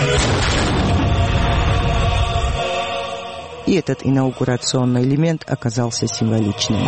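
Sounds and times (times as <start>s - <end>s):
ceremonial cannon salvo booming for a presidential inauguration in Telavi: 0.1s - 2.5s
speech: 3.7s - 6.8s.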